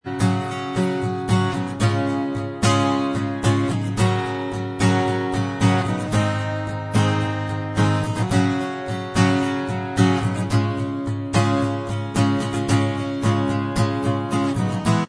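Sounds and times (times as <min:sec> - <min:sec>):
acoustic instrumental backing track: 0:00.0 - 0:15.0.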